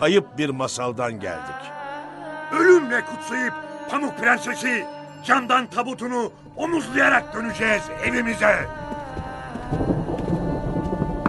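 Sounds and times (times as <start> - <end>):
speech: 0.0 - 1.8, 2.5 - 8.9
heavy rain in a dense steady downpour: 7.8 - 11.2.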